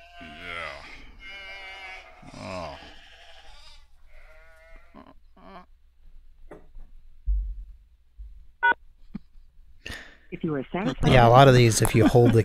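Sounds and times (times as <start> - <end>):
sheep bleating while being held still: 0.0 - 5.7
low thumps: 7.2 - 8.7
speech: 10.4 - 12.4
laughter: 10.5 - 12.4.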